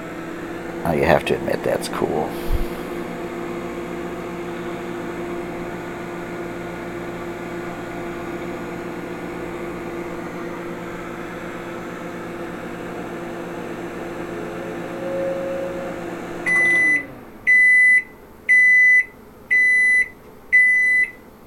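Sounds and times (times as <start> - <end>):
microwave oven humming while heating a cup on its turntable: 0.0 - 21.4
speech: 0.8 - 2.6
loud electronic beeps of a microwave oven signalling it is done: 14.6 - 21.2.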